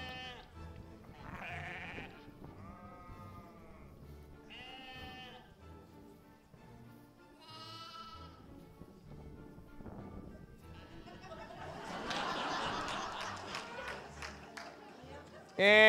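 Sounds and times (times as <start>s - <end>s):
several sheep bleating: 0.0s - 0.5s, 1.2s - 5.6s, 7.4s - 8.4s, 15.6s - 15.8s
busy farmyard noise: 0.0s - 5.6s, 7.4s - 8.5s
laughter: 10.8s - 15.6s.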